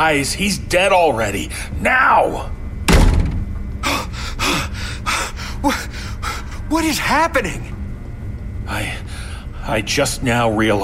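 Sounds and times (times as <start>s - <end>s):
speech: 0.0s - 2.6s, 4.4s - 4.9s, 5.6s - 6.1s, 6.7s - 7.7s, 8.7s - 10.8s
door slamming shut with a loud thud: 2.9s - 3.6s.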